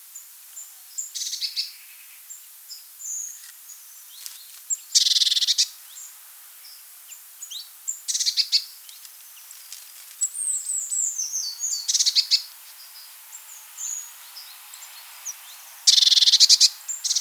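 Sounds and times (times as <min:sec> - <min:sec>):
Eurasian blue tit calls: 0:04.0 - 0:09.5, 0:10.2 - 0:17.2.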